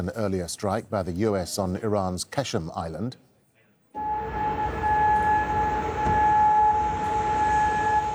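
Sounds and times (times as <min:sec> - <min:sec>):
speech: 0:00.0 - 0:03.2
air raid siren wailing in Kuwait or Bahrain during Iranian missile attacks: 0:04.0 - 0:08.1.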